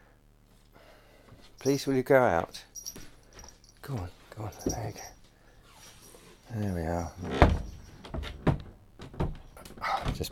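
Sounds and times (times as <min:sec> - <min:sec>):
speech: 0:01.5 - 0:02.7, 0:03.9 - 0:05.2, 0:06.5 - 0:07.7
faulty house door being opened and shut: 0:07.2 - 0:10.2.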